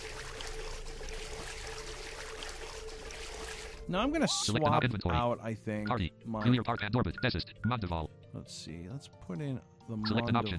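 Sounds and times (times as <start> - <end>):
deep water sloshing and trickling as someone swims: 0.0 - 3.9
speech: 3.9 - 10.5.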